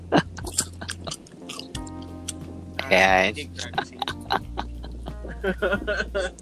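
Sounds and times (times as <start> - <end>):
steady low hum: 0.0 - 6.3
laughter: 0.1 - 1.8, 2.8 - 6.3
dark chocolate sea salt popcorn being chewed: 0.4 - 2.4
speech: 2.9 - 4.1, 5.4 - 6.3.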